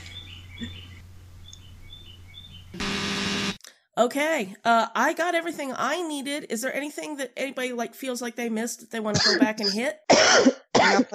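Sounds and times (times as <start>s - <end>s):
bird chirping outside in spring: 0.0s - 2.8s
speech: 0.6s - 0.8s, 4.0s - 11.1s
burst of broadband noise: 2.8s - 3.6s.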